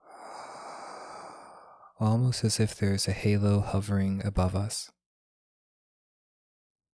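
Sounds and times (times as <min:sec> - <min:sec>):
deep exhale of breath during a breathing meditation: 0:00.0 - 0:02.0
speech: 0:02.0 - 0:05.0.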